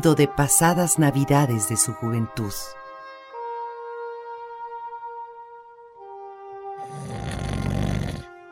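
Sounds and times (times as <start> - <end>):
speech: 0.0 - 2.8
soft sustained musical tones: 0.0 - 7.2
loud rasping snore: 6.8 - 8.4.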